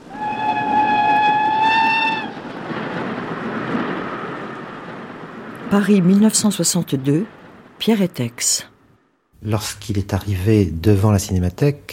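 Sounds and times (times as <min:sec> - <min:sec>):
passing locomotive multi-toned whistle: 0:00.0 - 0:02.4
passing locomotive rumbling: 0:00.0 - 0:08.3
speech: 0:05.7 - 0:08.7, 0:09.4 - 0:11.9.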